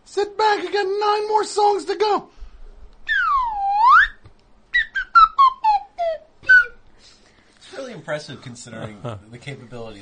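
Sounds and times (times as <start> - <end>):
speech: 0.1 - 2.4, 8.0 - 10.0
slide whistle tune: 3.1 - 6.8.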